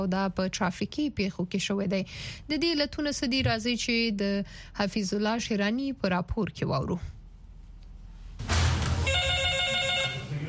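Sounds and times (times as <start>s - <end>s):
speech: 0.0s - 7.2s
telephone ringing at an emergency medical service in Quetta: 9.0s - 10.4s.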